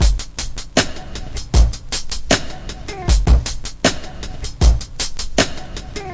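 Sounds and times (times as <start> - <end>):
drum loops and breaks at 78 bpm: 0.0 - 6.1
vocal break: 2.8 - 3.6, 5.8 - 6.1.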